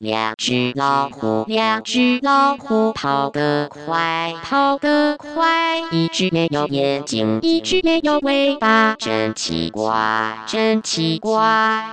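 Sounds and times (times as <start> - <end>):
synthesized singing voice song: 0.0 - 11.9.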